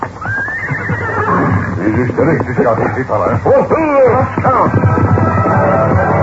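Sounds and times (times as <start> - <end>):
horse neighing with snorting pulses and a high quavering whinny: 0.2 - 2.2
speech: 2.0 - 6.1.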